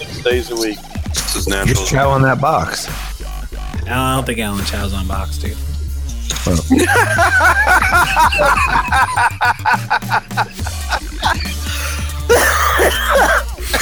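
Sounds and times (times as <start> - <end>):
speech: 0.2 - 3.1, 3.9 - 5.7, 6.4 - 11.4
wheezy snickers: 6.3 - 13.7
person laughing and coughing: 6.5 - 13.7
throat clearing: 12.2 - 13.7.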